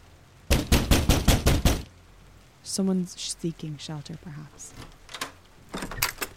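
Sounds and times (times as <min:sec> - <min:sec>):
loud sharp knocks on a door: 0:00.5 - 0:01.9
speech: 0:02.7 - 0:05.0.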